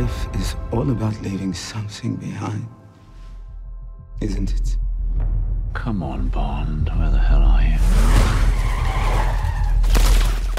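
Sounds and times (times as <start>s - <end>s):
speech: 0.1s - 2.8s, 4.2s - 8.4s
tires screeching in a car chase: 7.8s - 10.0s.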